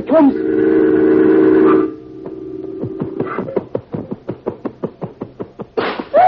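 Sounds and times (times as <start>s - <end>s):
speech: 0.0s - 0.8s
loud sustained tone: 0.0s - 3.7s.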